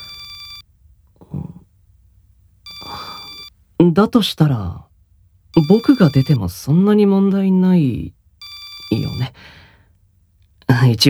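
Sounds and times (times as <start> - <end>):
phone ringtone for work calls: 0.0 - 0.6, 2.7 - 3.5, 5.6 - 6.4, 8.4 - 9.3
speech: 3.8 - 4.9, 5.6 - 8.2, 8.9 - 9.6, 10.7 - 11.0.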